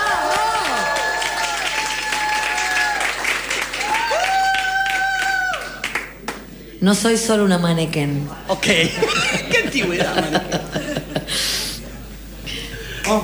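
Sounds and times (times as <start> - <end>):
cheers and whistles: 0.0 - 5.9
large crowd applauding: 0.0 - 6.5
speech: 6.8 - 10.8
laughter: 8.5 - 13.0.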